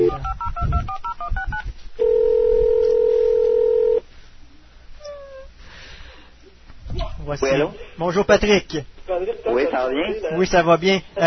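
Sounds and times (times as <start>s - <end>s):
touch-tone telephone dialing beeps: 0.0s - 2.2s
steady telephone tone: 0.0s - 4.0s
speech: 7.4s - 11.2s.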